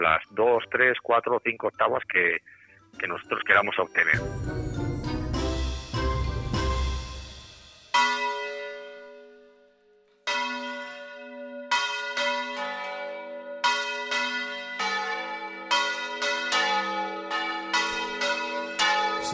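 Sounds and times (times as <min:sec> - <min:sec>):
speech: 0:00.0 - 0:04.6
church bells ringing in a traditional swinging peal: 0:03.3 - 0:19.3.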